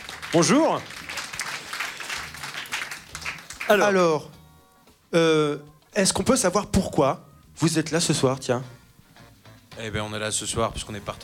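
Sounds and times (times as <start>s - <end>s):
audience applause at an evening talent showcase: 0.0s - 3.8s
speech: 0.3s - 1.0s, 3.7s - 4.4s, 5.1s - 8.8s, 9.8s - 11.2s.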